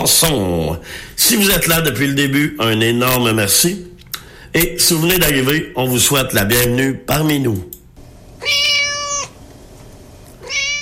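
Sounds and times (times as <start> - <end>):
speech: 0.0 - 3.9, 4.5 - 7.7
cat meowing: 8.4 - 9.4, 10.4 - 10.8.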